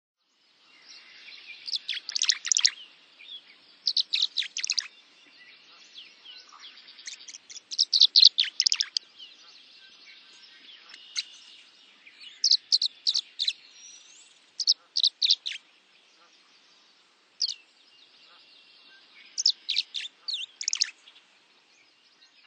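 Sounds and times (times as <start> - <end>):
Tree Swallow calling: 1.0 - 2.9, 3.8 - 21.2.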